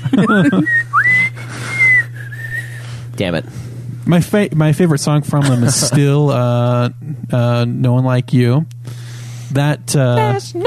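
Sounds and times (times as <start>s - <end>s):
laughter: 0.0s - 1.7s, 5.3s - 6.6s
steady low hum: 0.0s - 10.6s
speech: 0.1s - 0.8s, 3.2s - 8.8s, 9.5s - 10.6s
person whistling a short tune: 0.3s - 2.9s.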